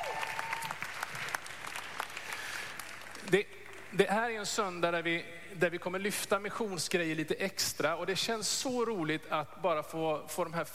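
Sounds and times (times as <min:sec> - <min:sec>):
room full of people clapping: 0:00.0 - 0:03.4
speech: 0:03.3 - 0:10.7.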